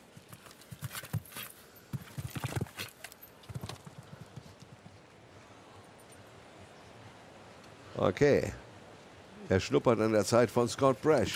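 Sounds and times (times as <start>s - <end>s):
horse hooves galloping during a show jumping round: 0.0s - 5.2s
speech: 8.0s - 8.6s, 9.5s - 11.3s.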